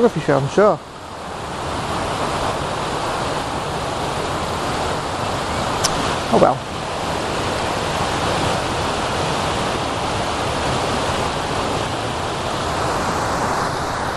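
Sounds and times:
speech: 0.0 - 0.9, 6.3 - 6.8
river water rushing over rocks: 0.0 - 14.1.

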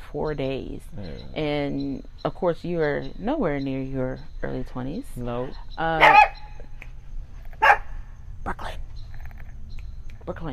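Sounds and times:
low steady hum: 0.0 - 10.5
speech: 0.1 - 6.4, 10.3 - 10.5
dog barking: 5.4 - 6.6, 7.6 - 8.0.

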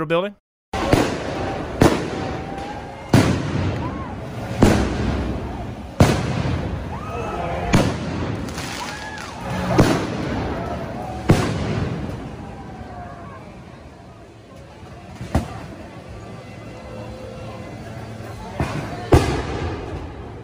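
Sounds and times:
speech: 0.0 - 1.2
fireworks and mortars exploding outdoors: 0.8 - 13.4, 18.6 - 20.4
crowd murmuring: 0.8 - 20.4.

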